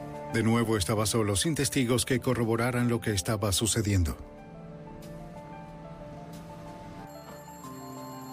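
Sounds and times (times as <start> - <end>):
speech: 0.3 - 4.3
telephone in a phone booth ringing with bright electronic tone: 7.1 - 8.3.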